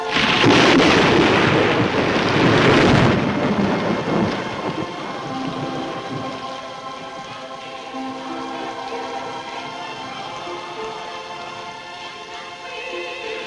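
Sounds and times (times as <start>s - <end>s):
loud thunderclap from a lightning bolt: 0.0s - 7.6s
steady heavy rain: 0.0s - 13.4s.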